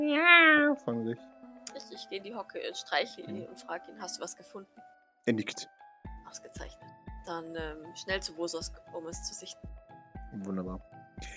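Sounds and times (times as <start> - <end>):
person imitating a cat's meow: 0.0 - 0.8
speech: 0.0 - 1.4, 2.0 - 9.7, 10.3 - 11.3.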